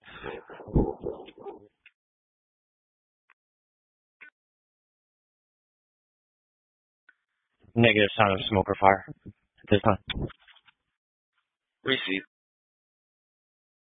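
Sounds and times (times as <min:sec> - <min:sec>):
dog barking inside a premises: 0:00.2 - 0:01.6
speech: 0:07.8 - 0:10.4, 0:11.8 - 0:12.3.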